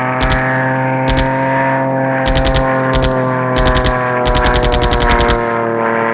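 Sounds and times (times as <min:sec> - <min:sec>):
air combat: 0:00.2 - 0:06.0.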